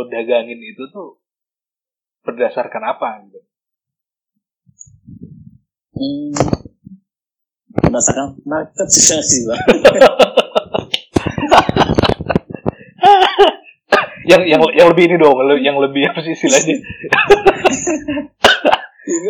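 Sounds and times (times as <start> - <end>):
speech: 0.0 - 1.2, 2.2 - 3.5, 6.0 - 6.7, 7.7 - 10.4, 14.3 - 19.2
laughter: 9.5 - 13.7, 16.0 - 19.0
person coughing harshly: 13.0 - 14.3, 17.7 - 19.0.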